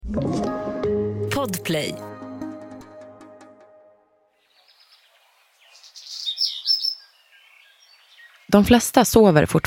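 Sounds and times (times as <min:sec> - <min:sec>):
speech: 0:01.4 - 0:02.1, 0:08.5 - 0:09.6
birds chirping and twittering outdoors: 0:04.4 - 0:09.6.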